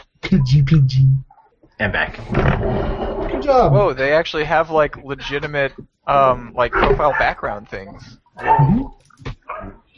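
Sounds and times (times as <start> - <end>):
speech: 0.3 - 9.0
dogs barking and yelping: 6.7 - 7.4.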